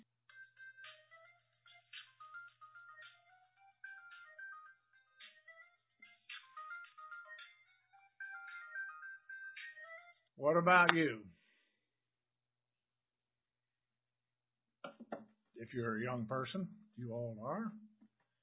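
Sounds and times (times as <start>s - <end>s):
cell phone ringtone with a repeating electronic melody: 0.3s - 10.2s
speech: 10.4s - 11.3s, 15.7s - 17.8s.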